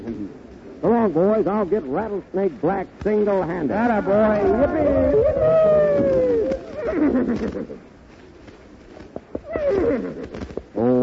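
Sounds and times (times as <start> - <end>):
speech: 0.8 - 6.3, 7.0 - 7.9
horse whinnying: 4.0 - 7.8, 9.4 - 10.5
softer rustling and clatter: 5.2 - 10.7.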